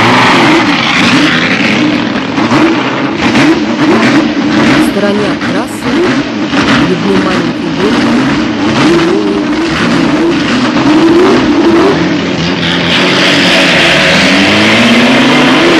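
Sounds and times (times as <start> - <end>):
racing car speeding along a track at maximum loads and speeds: 0.0 - 15.7.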